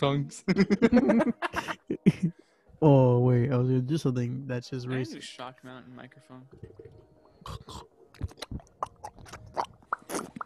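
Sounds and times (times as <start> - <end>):
speech: 0.0 - 8.6
laughter: 0.4 - 2.3
wet slurping and smacking mouth noises: 6.7 - 10.4.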